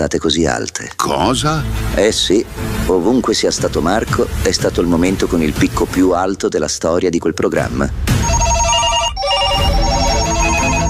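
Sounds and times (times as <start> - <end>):
speech: 0.0 - 8.2
several telephones ringing with electronic trills: 8.2 - 10.8.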